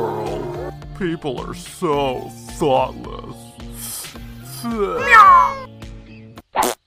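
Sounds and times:
speech: 1.0s - 4.0s, 4.6s - 5.6s
cat in a tree meowing: 4.9s - 5.7s.

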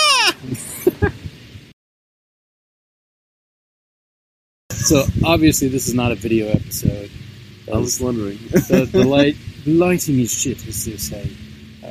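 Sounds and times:
goat screaming: 0.0s - 0.4s
laughter: 0.0s - 1.3s, 7.9s - 9.4s
speech: 4.8s - 11.9s.

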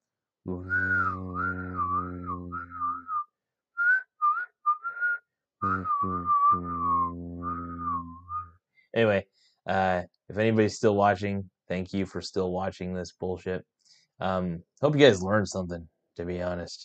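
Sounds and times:
speech: 0.4s - 0.9s, 9.0s - 16.8s
low buzzing hum: 0.5s - 3.2s, 5.6s - 8.5s
person whistling a wavering tune: 0.5s - 8.5s.

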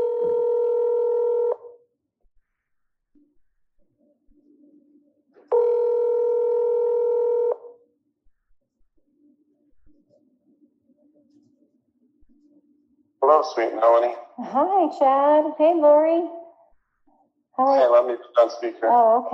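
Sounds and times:
outgoing phone call ringback tones: 0.0s - 1.7s, 5.5s - 7.7s
faint low murmuring: 13.2s - 14.8s, 17.6s - 19.3s
speech: 13.3s - 16.4s, 17.6s - 19.3s.

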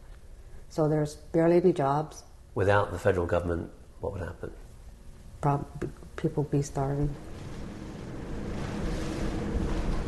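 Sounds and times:
speech: 0.7s - 4.6s, 5.4s - 7.4s
boat engine rumble on open sea: 6.7s - 10.0s
rushing water: 7.2s - 10.0s.

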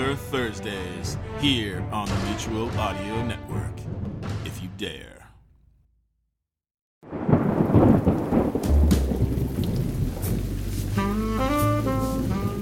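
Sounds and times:
music with low sustained tone and rising melodic line: 0.0s - 5.6s, 8.6s - 12.5s
speech: 0.1s - 4.0s, 4.8s - 5.2s
deep rumbling thunder: 7.0s - 12.5s
steady rain falling: 7.1s - 12.5s.

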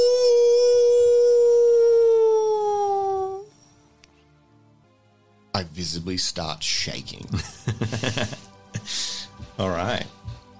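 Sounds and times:
long howl echoing from deep woods: 0.0s - 3.6s
speech: 5.6s - 9.0s, 9.6s - 10.2s
laughter: 7.3s - 9.0s.

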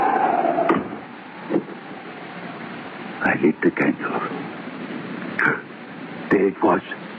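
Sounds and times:
steady rushing wind-like hiss: 0.0s - 7.1s
door swinging shut with a muffled thump: 0.7s - 1.7s
speech: 3.4s - 4.4s, 6.4s - 7.1s.

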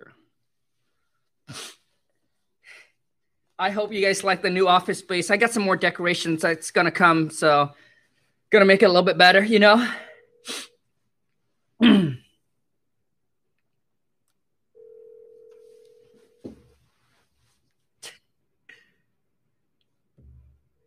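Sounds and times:
sneeze or cough bursts: 1.4s - 1.9s, 11.8s - 12.3s
speech: 3.6s - 7.8s, 8.5s - 10.6s
ringback tone of outgoing phone call: 14.8s - 16.4s.

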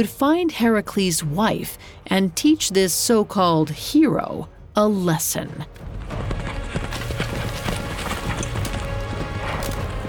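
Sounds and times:
speech: 0.0s - 6.2s
centaur hooves galloping through trees: 5.8s - 10.0s.

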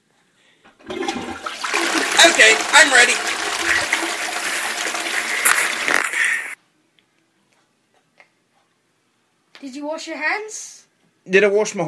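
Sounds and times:
toilet flushing: 0.7s - 6.6s
speech: 2.2s - 3.4s, 9.7s - 11.8s.

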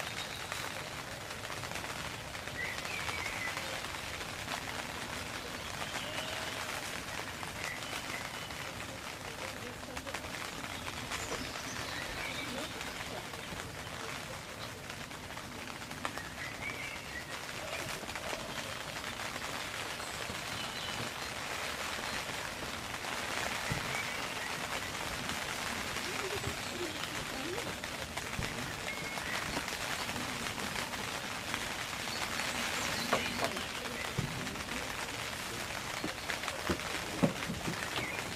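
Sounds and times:
steady rain pattering on a tent: 0.0s - 38.3s.

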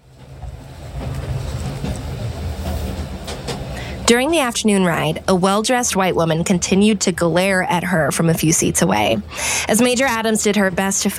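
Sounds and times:
wheels clicking over rail joints: 0.0s - 4.0s
train rumbling on tracks: 0.0s - 11.1s
speech: 4.1s - 11.1s.

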